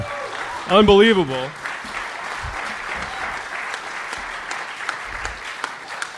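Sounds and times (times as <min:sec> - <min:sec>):
live crowd applauding: 0:00.0 - 0:06.1
speech: 0:00.7 - 0:01.6
low thumps: 0:02.4 - 0:03.4.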